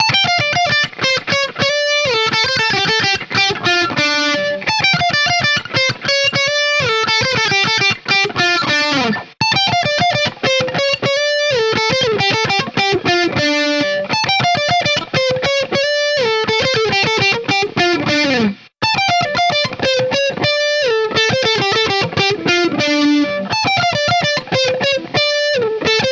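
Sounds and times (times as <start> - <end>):
electric guitar lead on bridge, body and neck pickups: 0.0 - 26.1.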